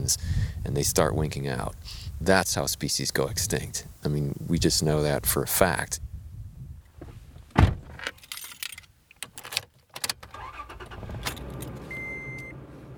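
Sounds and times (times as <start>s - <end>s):
speech: 0.1s - 6.0s
pickup truck door thunking shut: 7.5s - 8.1s, 9.5s - 12.9s
clicks and rustles: 7.9s - 10.4s
keys jingling: 8.1s - 10.2s, 11.2s - 11.9s.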